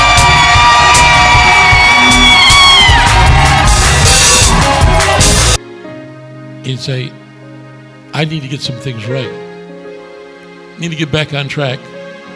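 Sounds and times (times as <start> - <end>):
large crowd screaming and shouting praise: 0.0 - 5.6
speech: 6.7 - 7.2, 8.2 - 9.4, 10.8 - 12.0.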